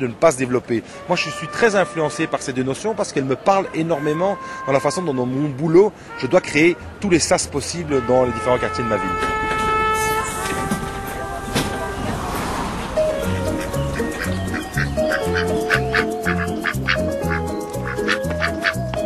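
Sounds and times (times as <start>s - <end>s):
speech: 0.0s - 9.6s
busy outdoor noise: 0.0s - 19.0s
duck quacking beside a small pond: 13.1s - 19.0s.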